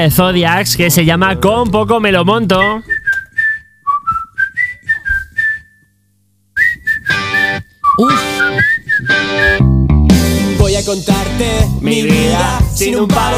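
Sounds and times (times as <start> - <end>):
speech: 0.0 - 3.0, 8.0 - 9.7, 10.8 - 13.3
bright whistled melody in a pop song: 2.6 - 5.9, 6.6 - 9.7
full pop band with drums and bass: 8.0 - 13.3.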